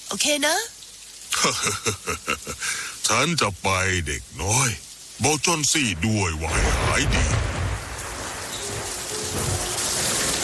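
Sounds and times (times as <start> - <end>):
heavy rain in a storm over a town at night: 0.0 - 10.4
speech: 0.1 - 0.8, 1.4 - 7.5
laughter: 1.3 - 2.6
distant thunder rumbling: 5.8 - 10.4.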